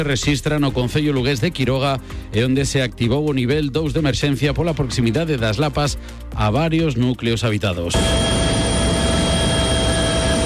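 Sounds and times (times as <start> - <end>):
speech: 0.0 - 8.5
helicopter ferrying wildfire brigade crews to a mountain area during a forest fire: 8.0 - 10.4.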